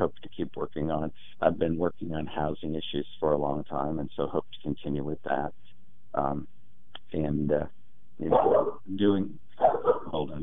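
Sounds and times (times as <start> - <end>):
speech: 0.0 - 10.4
dog barking and yipping: 8.2 - 8.8, 9.6 - 10.2.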